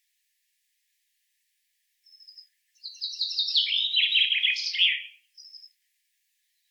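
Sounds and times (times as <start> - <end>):
common chaffinch Fringilla coelebs song: 2.1 - 5.8.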